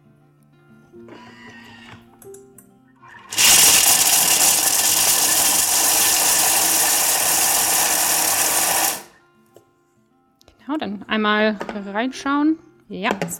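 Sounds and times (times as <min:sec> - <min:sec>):
electric food chopper with lid on chopping nuts: 0:03.1 - 0:09.1
speech: 0:10.8 - 0:13.3.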